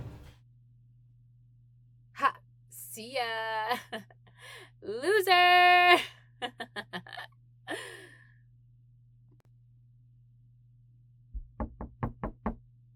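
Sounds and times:
speech: 0:03.0 - 0:04.2, 0:04.8 - 0:05.8
knocking on a locked janitor's closet door blocked by a chair: 0:11.4 - 0:12.6.

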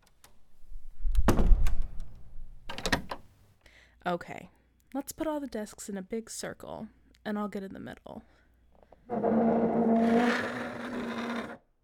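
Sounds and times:
heavy door pushed shut with a rattle: 0:01.2 - 0:01.9
speech: 0:04.0 - 0:08.4, 0:09.1 - 0:10.6.

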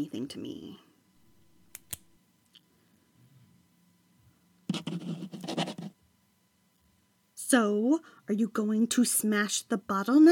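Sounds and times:
speech: 0:00.0 - 0:00.9, 0:07.5 - 0:10.3
sharp clicks: 0:01.7 - 0:02.1
pen scratching across paper while signing a signature: 0:04.7 - 0:05.9.

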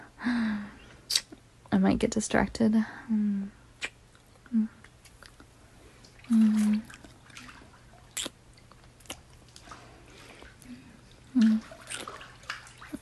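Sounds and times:
speech: 0:01.8 - 0:03.6, 0:04.5 - 0:04.8
water sloshing and splashing in a bathtub: 0:04.8 - 0:13.0.

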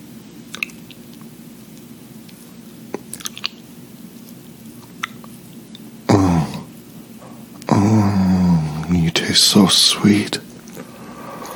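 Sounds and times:
quiet steady hiss: 0:00.0 - 0:11.5
wet tongue licking: 0:00.5 - 0:03.6, 0:04.2 - 0:05.9
speech: 0:09.4 - 0:10.5.

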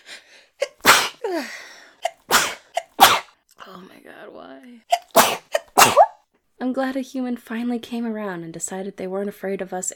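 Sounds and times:
sneezing fit with inhaled gasps: 0:00.6 - 0:01.2, 0:02.0 - 0:03.3, 0:04.9 - 0:06.1
speech: 0:03.7 - 0:05.0, 0:06.6 - 0:09.9.

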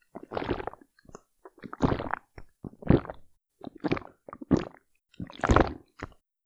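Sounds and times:
pump: 0:01.6 - 0:06.2.

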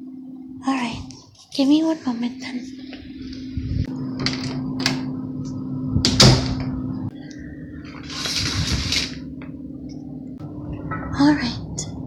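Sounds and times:
steady low electrical hum: 0:00.0 - 0:12.0
speech: 0:00.6 - 0:02.8
door shutting with a thud: 0:06.0 - 0:06.8
curtains being drawn: 0:08.0 - 0:09.2.

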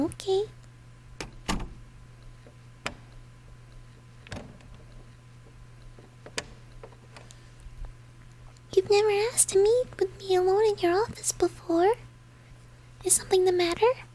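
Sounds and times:
steady low hum: 0:00.0 - 0:14.1
speech: 0:00.1 - 0:00.6, 0:08.9 - 0:12.0, 0:13.0 - 0:14.1
door thudding shut: 0:01.2 - 0:01.8, 0:04.3 - 0:04.7.

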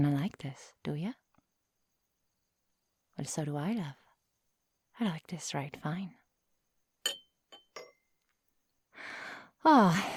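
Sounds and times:
speech: 0:00.0 - 0:01.2, 0:03.2 - 0:04.0, 0:05.0 - 0:06.2, 0:09.0 - 0:10.1
wine glasses clinking as a glass is handed over: 0:07.0 - 0:08.1.

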